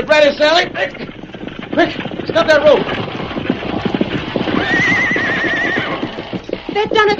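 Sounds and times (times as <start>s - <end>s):
speech: 0.0s - 1.0s, 1.8s - 3.2s, 6.8s - 7.1s
horse hooves clopping: 0.0s - 7.1s
horse whinnying: 0.8s - 7.1s.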